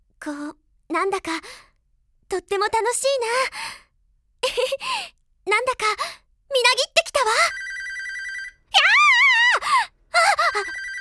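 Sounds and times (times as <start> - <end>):
speech: 0.2 - 1.7, 2.3 - 3.8, 4.4 - 7.6, 10.2 - 10.9
telephone ringing with electronic tone: 7.2 - 8.8, 10.3 - 10.9
wavering vocal-like cry: 10.2 - 10.9.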